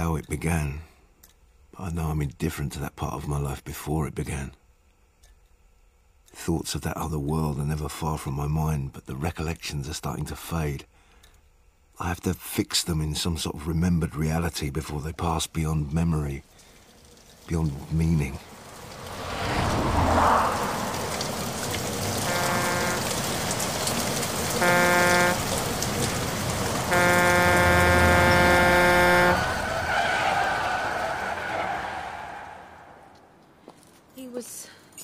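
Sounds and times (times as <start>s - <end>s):
speech: 0.0s - 0.9s, 1.8s - 4.6s, 6.3s - 11.0s, 12.0s - 16.6s, 17.5s - 18.5s
heavy rain: 16.0s - 33.1s
motorway road noise and rumble: 16.4s - 34.4s
short tonal blares: 19.3s - 32.8s
lorry tyres screeching on a motorway in pouring rain: 26.8s - 33.1s.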